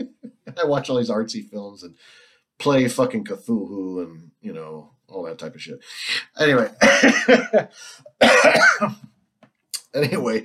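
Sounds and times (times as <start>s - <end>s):
speech: 0.0s - 9.1s, 10.0s - 10.4s
quiet breathing: 1.9s - 2.6s, 7.7s - 8.1s
laughter: 6.0s - 7.9s
person coughing: 6.8s - 7.6s, 8.2s - 9.1s.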